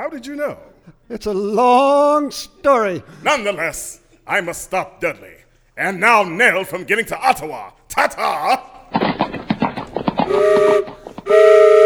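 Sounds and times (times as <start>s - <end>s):
speech: 0.1s - 9.0s, 10.3s - 11.8s
moving train chugging and clattering: 9.4s - 11.8s
train whistle blowing multi-tone blasts: 10.3s - 11.8s.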